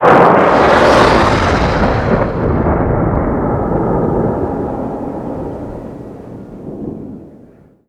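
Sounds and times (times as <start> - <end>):
Abrams 120mm cannon blast tail: 0.0 - 7.8.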